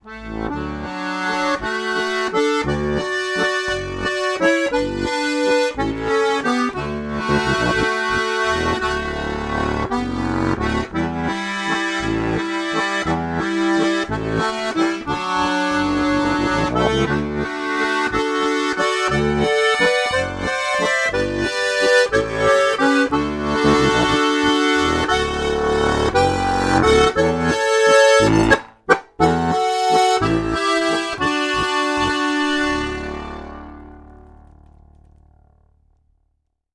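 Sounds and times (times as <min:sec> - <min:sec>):
half-open ADGC harmonica playing: 0:00.0 - 0:34.5.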